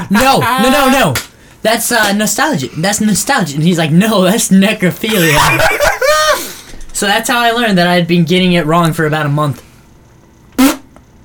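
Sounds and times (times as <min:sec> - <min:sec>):
speech: 0:00.1 - 0:09.7
laughter: 0:05.0 - 0:06.5
buzzy fart-like noise made with the mouth: 0:10.6 - 0:10.9.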